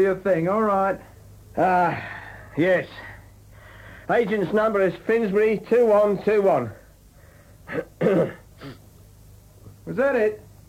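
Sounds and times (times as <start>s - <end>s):
speech: 0.0s - 3.1s, 4.1s - 6.8s, 7.7s - 8.8s, 9.8s - 10.4s
performer at an audition clearing his throat: 7.7s - 8.8s.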